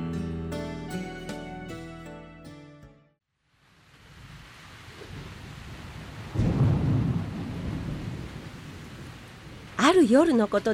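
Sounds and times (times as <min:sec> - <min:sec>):
ringing musical notes: 0:00.0 - 0:03.1
heavy rain on a roof during a violent storm at night: 0:03.5 - 0:10.7
loud roll of thunder: 0:04.9 - 0:09.8
speech: 0:10.0 - 0:10.7.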